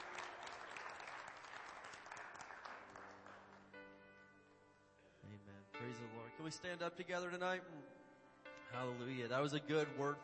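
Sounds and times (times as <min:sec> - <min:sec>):
congregation clapping hands: 0:00.0 - 0:04.0
speech: 0:05.4 - 0:08.0, 0:08.7 - 0:10.2.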